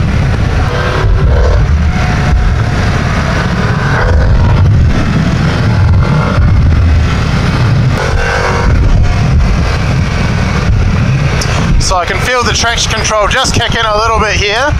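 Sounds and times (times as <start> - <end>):
Harley motorcycle engine roar while ridden through corners: 0.0 - 14.7
speech: 12.5 - 14.7.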